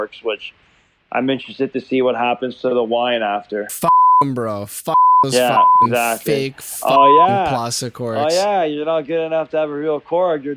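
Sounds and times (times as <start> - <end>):
speech: 0.0 - 10.5
flat steady censor bleeps covering swear words: 3.7 - 7.6.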